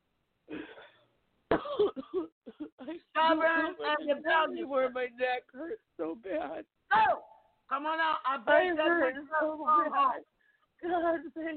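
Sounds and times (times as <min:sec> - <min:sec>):
harsh raspy coughing and gagging: 0:00.5 - 0:03.1
speech: 0:03.2 - 0:11.5.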